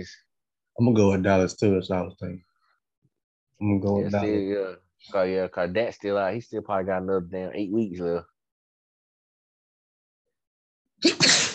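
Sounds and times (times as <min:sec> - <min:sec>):
speech: 0:00.0 - 0:00.2, 0:00.8 - 0:02.5, 0:03.6 - 0:08.3
person sneezing: 0:11.0 - 0:11.5.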